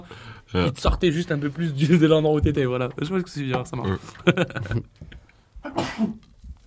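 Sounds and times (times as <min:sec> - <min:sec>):
speech: 0:00.0 - 0:05.1, 0:05.7 - 0:06.3
laughter: 0:03.4 - 0:05.3
sneeze: 0:05.7 - 0:06.2.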